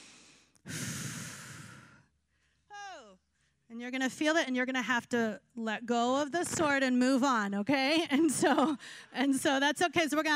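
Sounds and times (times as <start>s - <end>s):
people breathing in deeply during a spiritual gathering: 0.0s - 2.7s
speech: 3.8s - 10.3s.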